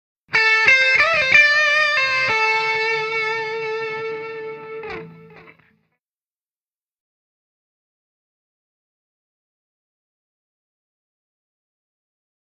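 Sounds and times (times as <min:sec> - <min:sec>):
guitar riff: 0:00.3 - 0:06.0.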